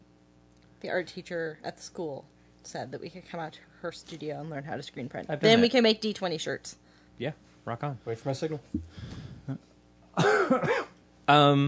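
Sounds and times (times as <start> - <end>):
speech: 0.8 - 9.6, 11.3 - 11.6
person coughing harshly away from the microphone: 10.2 - 11.0.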